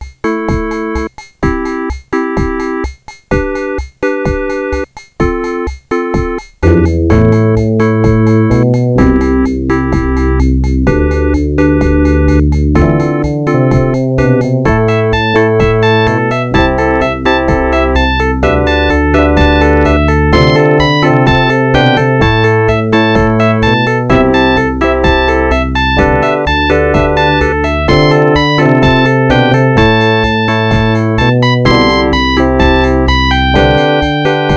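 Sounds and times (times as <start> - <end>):
FM emulation music from a Sound Blaster sound card: 0.0 - 34.5.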